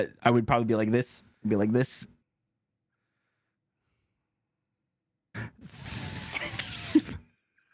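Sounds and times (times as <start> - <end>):
speech: 0.0 - 2.1
person imitating a hissing snake: 5.4 - 7.2.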